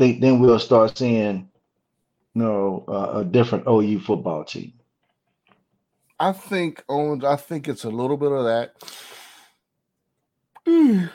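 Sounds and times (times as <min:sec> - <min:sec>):
speech: 0:00.0 - 0:01.5, 0:02.4 - 0:04.8, 0:06.2 - 0:09.1, 0:10.7 - 0:11.1
person yawning: 0:10.6 - 0:11.1.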